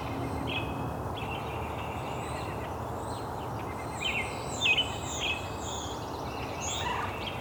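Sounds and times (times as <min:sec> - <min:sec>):
robin singing: 0:00.0 - 0:07.3
steady outdoor hiss: 0:00.0 - 0:07.3
starling calling: 0:03.7 - 0:07.3.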